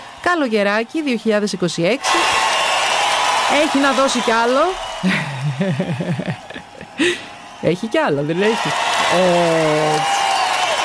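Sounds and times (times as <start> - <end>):
speech: 0.3 - 2.4, 3.5 - 10.2
applause sound effect: 2.0 - 10.8
laughter: 5.0 - 7.4.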